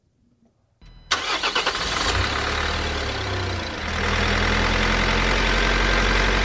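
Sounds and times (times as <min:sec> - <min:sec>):
van engine running with a rough rumble: 0:00.9 - 0:06.4
van starter motor cranking: 0:01.1 - 0:05.4.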